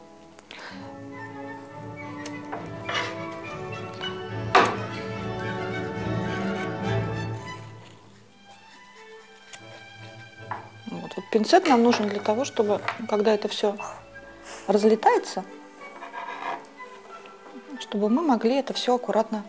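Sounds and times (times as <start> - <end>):
scissors finely chopping wool into small pieces: 4.6 - 11.0
speech: 11.3 - 14.0, 14.7 - 15.6, 17.9 - 19.4.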